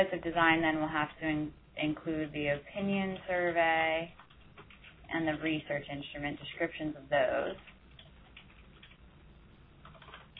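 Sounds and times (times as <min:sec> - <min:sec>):
speech: 0:00.0 - 0:04.2, 0:05.1 - 0:07.7
low steady hiss: 0:00.0 - 0:10.3
typing on a computer keyboard: 0:04.1 - 0:05.1, 0:07.6 - 0:09.0, 0:09.8 - 0:10.3.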